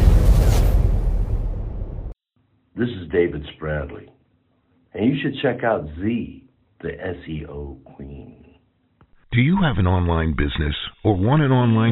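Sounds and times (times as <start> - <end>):
explosion sound effect with deep boom and low rumble: 0.0 - 2.2
speech: 2.8 - 4.2, 4.9 - 8.4, 9.3 - 11.9.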